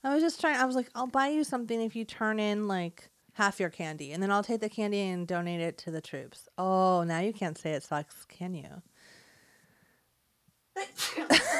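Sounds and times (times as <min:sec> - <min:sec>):
speech: 0:00.1 - 0:08.9, 0:10.8 - 0:11.5
big dramatic sneeze: 0:10.8 - 0:11.5.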